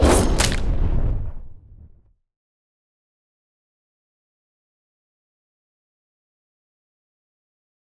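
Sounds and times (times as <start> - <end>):
dragon attacking with rending slash and fire: 0.0 - 1.2
fire: 0.0 - 2.1.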